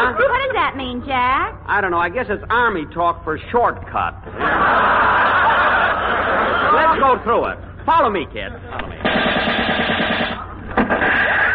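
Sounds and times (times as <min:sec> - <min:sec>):
steady noisy background: 0:00.0 - 0:11.5
speech: 0:00.2 - 0:05.4, 0:06.7 - 0:10.3
laughter: 0:04.2 - 0:07.4
machine-gun-like gunfire on an army infiltration course: 0:09.0 - 0:11.5.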